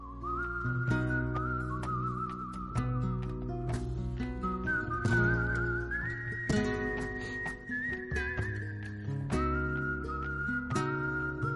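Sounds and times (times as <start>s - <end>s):
clear whistled melody: 0.0s - 11.5s
strummed acoustic guitar accompaniment: 0.1s - 11.5s.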